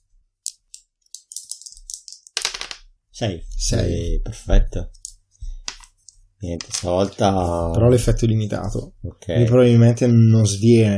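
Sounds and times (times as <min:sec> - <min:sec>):
three dice clattering on a hard surface: 0:00.4 - 0:02.9, 0:06.6 - 0:07.2
speech: 0:03.2 - 0:05.0, 0:06.4 - 0:10.9.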